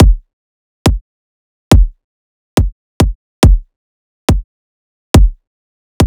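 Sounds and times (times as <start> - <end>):
riddim kick drum loop: 0.0 - 0.3, 1.7 - 2.0, 2.6 - 3.7, 5.2 - 5.4.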